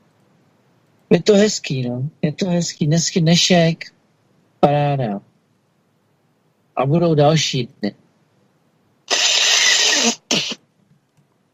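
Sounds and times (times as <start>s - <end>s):
speech: 1.1s - 4.0s, 4.6s - 5.3s, 6.8s - 8.0s
person blowing nose into a microphone: 9.1s - 10.6s.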